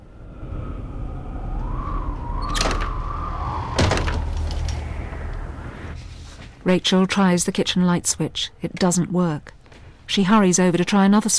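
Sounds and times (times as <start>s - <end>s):
wind gusting through a bedroom window: 0.0s - 7.8s
speech: 6.7s - 11.3s.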